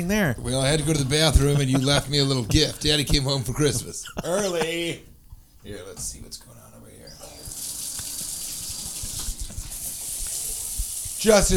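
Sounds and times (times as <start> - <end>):
speech: 0.0 - 6.5, 11.2 - 11.5
laughter: 0.4 - 5.1
faucet running with flowing water: 7.1 - 11.5.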